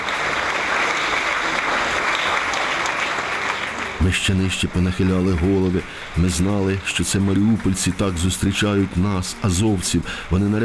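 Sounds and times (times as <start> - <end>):
large standing audience applauding: 0.0 - 10.6
speech: 4.0 - 10.6.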